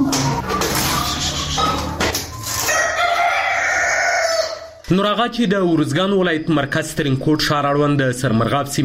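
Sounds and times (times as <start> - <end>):
chickens clucking at a small family poultry farm in Uruzgan province Afghanistan: 0.0 - 4.9
rooster crowing at a small family poultry farm in Uruzgan province Afghanistan: 0.9 - 4.8
speech: 4.9 - 8.8.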